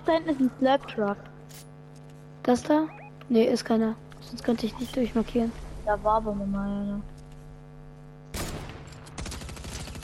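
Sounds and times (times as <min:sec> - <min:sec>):
speech: 0:00.1 - 0:01.7, 0:02.4 - 0:07.2
automatic gunfire in a video game: 0:08.3 - 0:10.0.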